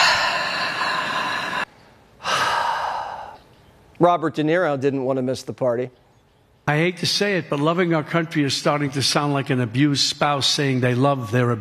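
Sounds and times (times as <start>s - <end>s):
deep breath in and out: 0.0s - 3.5s
speech: 4.0s - 6.0s, 6.7s - 11.5s.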